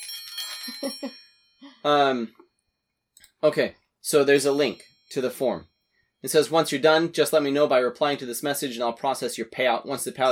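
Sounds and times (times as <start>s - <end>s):
little celebratory bells jingling: 0.0s - 2.2s, 4.1s - 6.7s
speech: 0.7s - 2.4s, 3.4s - 10.3s.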